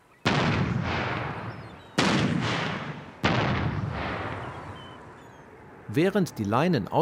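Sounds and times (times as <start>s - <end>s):
boat-mounted acoustic bird-scaring cannon firing: 0.2s - 5.5s
speech: 5.9s - 7.0s.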